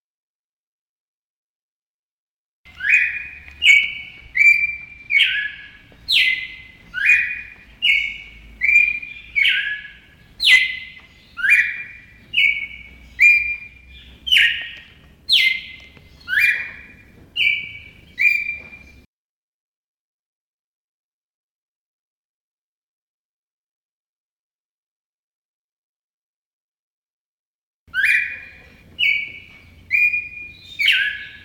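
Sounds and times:
red-crested cardinal chirping: 0:02.7 - 0:19.1, 0:27.9 - 0:31.4.

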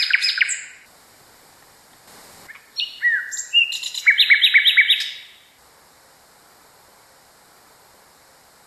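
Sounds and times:
common nightingale singing varied phrases: 0:00.0 - 0:00.9, 0:02.5 - 0:05.6.

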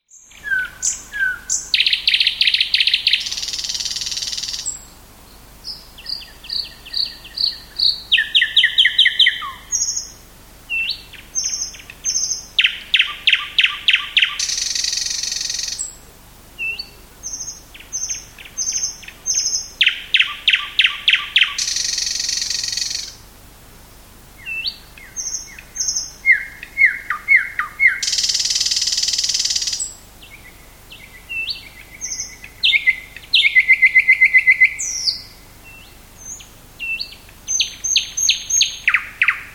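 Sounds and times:
thrush nightingale: 0:00.0 - 0:39.5.

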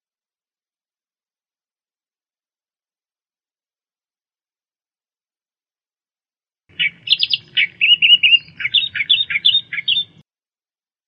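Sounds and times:
Australian reed warbler singing: 0:06.7 - 0:10.2.

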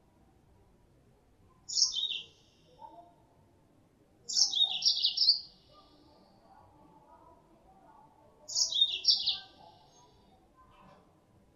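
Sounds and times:
female Mozambique canary lure calls: 0:01.7 - 0:02.2, 0:04.3 - 0:05.4, 0:08.5 - 0:09.5.

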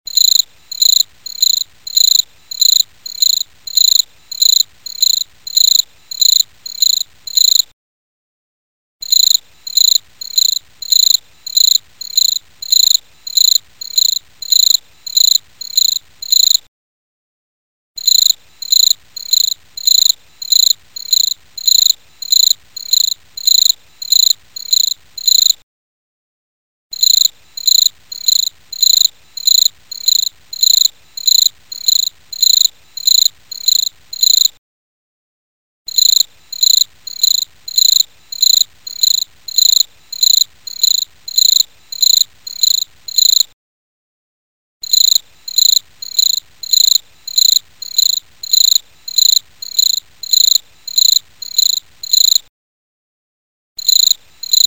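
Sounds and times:
cricket chirping at midnight: 0:00.1 - 0:07.7, 0:09.0 - 0:16.6, 0:18.0 - 0:25.6, 0:26.9 - 0:34.6, 0:35.9 - 0:43.5, 0:44.8 - 0:52.4, 0:53.8 - 0:54.6.

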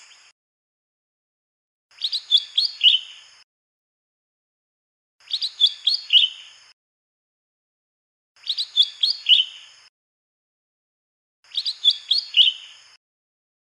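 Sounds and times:
lesser green leafbird song: 0:01.9 - 0:03.3, 0:05.2 - 0:06.6, 0:08.4 - 0:09.7, 0:11.5 - 0:12.8.

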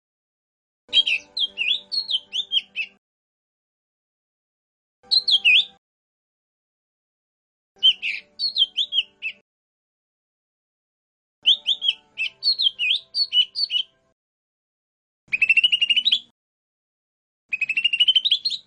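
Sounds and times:
lesser green leafbird singing: 0:00.9 - 0:03.0, 0:05.0 - 0:05.8, 0:07.8 - 0:09.4, 0:11.4 - 0:14.0, 0:15.3 - 0:16.3, 0:17.5 - 0:18.6.

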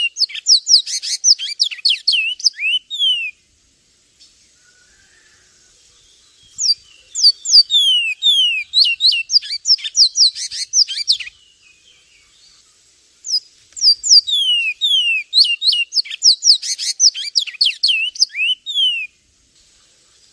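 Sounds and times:
Javan tesia piercing high chirps and falling whistles: 0:00.0 - 0:03.3, 0:06.6 - 0:11.3, 0:13.3 - 0:19.1.

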